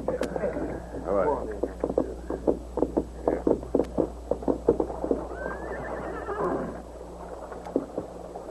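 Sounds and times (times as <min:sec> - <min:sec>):
low hum: 0:00.0 - 0:08.4
white horse hooves clopping: 0:00.1 - 0:06.8, 0:07.4 - 0:08.4
horse giving a rising quavering whinny: 0:05.2 - 0:06.8.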